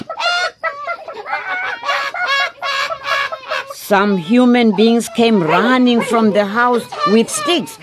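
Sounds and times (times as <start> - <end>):
hens screeching and cackling: 0.0 - 7.8
speech: 3.9 - 7.8.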